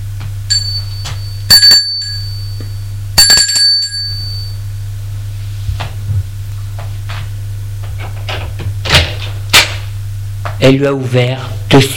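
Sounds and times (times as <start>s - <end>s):
steady low hum: 0.0s - 10.5s
doorbell ringing: 0.5s - 4.7s
speech: 10.6s - 11.9s.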